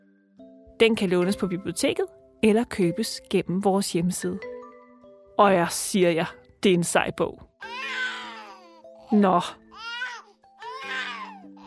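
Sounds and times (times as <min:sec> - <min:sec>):
speech: 0:00.8 - 0:04.5, 0:05.4 - 0:08.0, 0:09.1 - 0:09.6
baby crying: 0:07.6 - 0:11.6.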